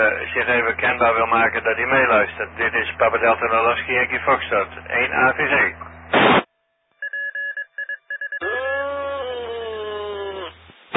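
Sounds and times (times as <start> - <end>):
speech: 0.0 - 6.4
amateur radio repeater static: 0.0 - 6.5
touch-tone beeps on amateur radio repeater: 7.0 - 8.4.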